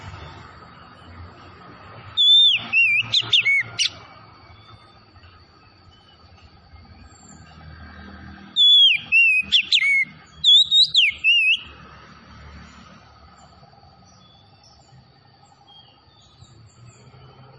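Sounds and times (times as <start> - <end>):
Oriental magpie-robin Tretes variety singing vigorously with sliding whistles: 2.1 - 4.0, 8.5 - 11.7.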